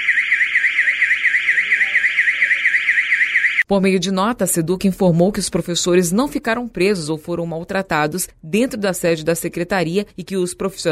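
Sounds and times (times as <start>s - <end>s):
electronic alarm wailing to disperse protesters: 0.0s - 3.7s
speech: 3.7s - 10.9s.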